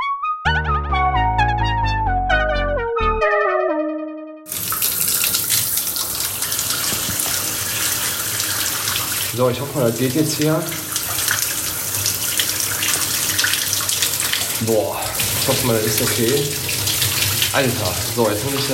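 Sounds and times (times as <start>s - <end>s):
descending electronic tones: 0.0s - 4.5s
shower water running: 4.5s - 18.7s
speech: 9.4s - 10.8s, 14.6s - 16.8s, 17.5s - 18.7s.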